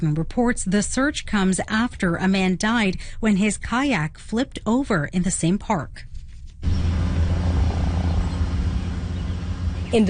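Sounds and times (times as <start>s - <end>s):
speech: 0.0s - 6.8s
police helicopter circling overhead above a conservation area: 6.6s - 10.0s.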